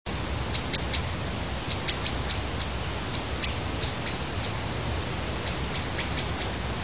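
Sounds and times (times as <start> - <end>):
blackbird alarm call: 0.5 - 4.6, 5.4 - 6.6.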